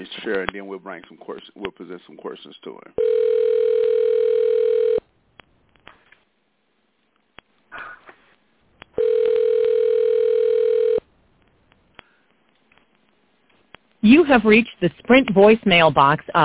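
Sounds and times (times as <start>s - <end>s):
speech: 0.0s - 4.0s, 14.0s - 16.4s
telephone ringback tone on an outgoing call: 3.0s - 5.0s, 9.0s - 11.0s.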